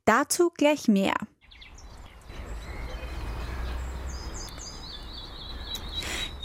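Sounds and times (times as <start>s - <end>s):
speech: 0.1s - 1.3s
springtime birds chirping and singing: 1.3s - 6.4s
rushing outdoor noise: 1.5s - 6.4s.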